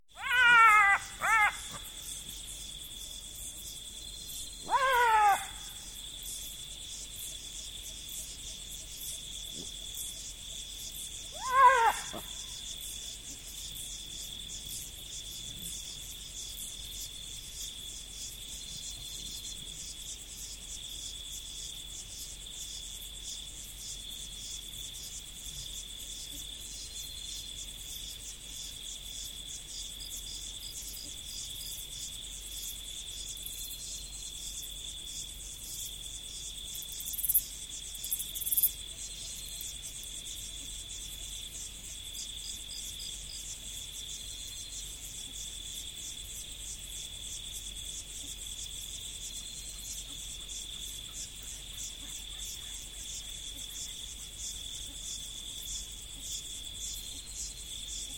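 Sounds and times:
insects in the prairies: 0.0s - 58.1s
jackals in the prairies: 0.2s - 2.1s, 4.6s - 5.8s, 11.3s - 12.4s.

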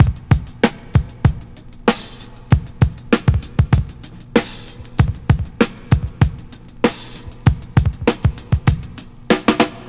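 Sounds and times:
drum beat in A sharp: 0.0s - 9.8s.

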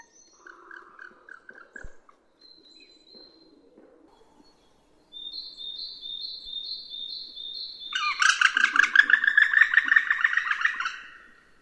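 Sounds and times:
woodpecker giving harsh chattering notes: 4.2s - 11.6s.

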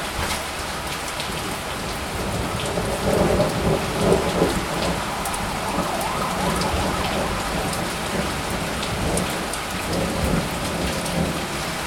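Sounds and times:
thunder during a short spring storm in a city: 0.1s - 11.8s
alarms in a city during a spring storm: 3.7s - 9.2s.

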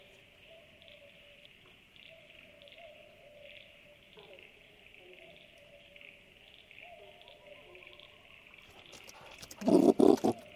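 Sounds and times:
brush-tailed possum grunting in the woods: 8.7s - 10.5s.

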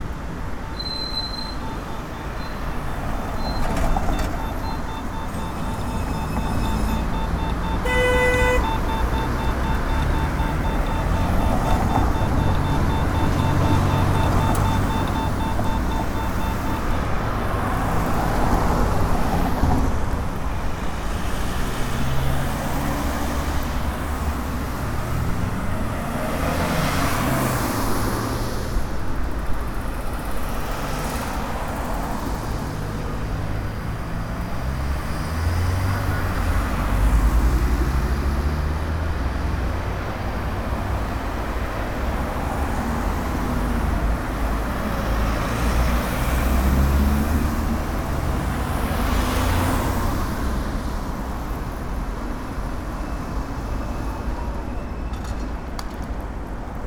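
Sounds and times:
traffic in a city square: 0.0s - 56.8s
accessible pedestrian signal beeps in a city square: 0.6s - 18.3s, 52.9s - 55.8s.

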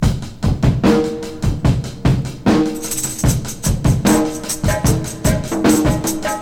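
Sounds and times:
75 bpm drum beat in F with kick tuned to F: 0.0s - 6.4s.

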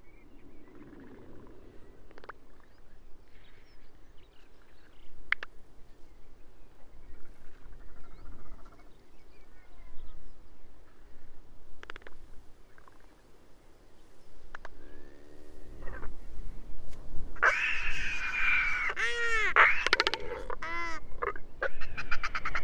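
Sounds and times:
royal albatross clicks: 11.8s - 13.0s, 19.7s - 20.7s
royal albatross arched braying calls: 14.6s - 16.4s, 17.4s - 22.6s.

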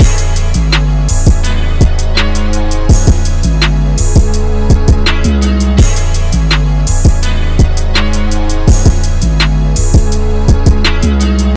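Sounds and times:
harmonic trap rap instrumental with strings in C sharp minor: 0.0s - 11.5s.

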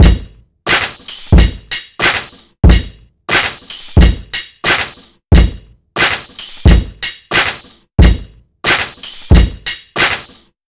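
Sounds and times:
90 bpm breakbeat sample in A key: 0.0s - 10.6s.

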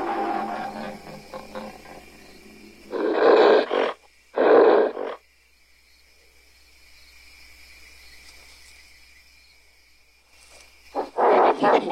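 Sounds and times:
ape giving harsh rough growling roars: 0.0s - 5.2s
several angry apes screaming and growling: 0.0s - 5.2s, 11.0s - 11.9s.

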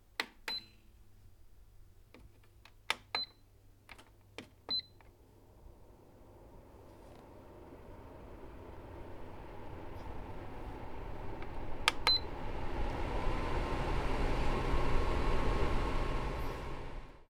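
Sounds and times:
air purifier: 4.2s - 17.2s
air purifier beeps: 4.7s - 5.1s, 7.8s - 16.7s.

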